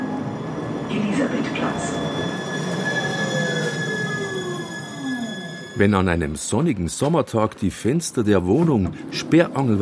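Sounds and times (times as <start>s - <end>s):
tram wheels squealing against the rails: 0.0s - 6.6s
line 27 tram rolling past in Maxvorstadt Munich: 0.0s - 9.8s
speech: 0.9s - 2.3s, 5.8s - 9.8s.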